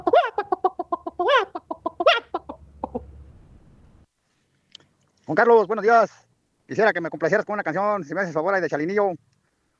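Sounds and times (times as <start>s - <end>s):
chicken clucking rapidly with short sharp calls: 0.0s - 3.2s
speech: 5.3s - 9.2s.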